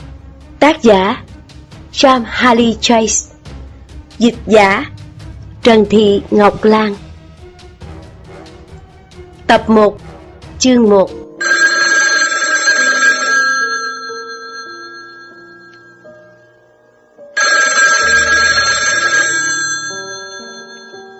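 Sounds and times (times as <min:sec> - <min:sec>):
speech: 0:00.6 - 0:01.2, 0:02.0 - 0:03.3, 0:04.2 - 0:04.9, 0:05.6 - 0:07.0, 0:09.5 - 0:10.0, 0:10.6 - 0:11.2
telephone ringing in a room: 0:11.4 - 0:16.6, 0:17.3 - 0:21.1.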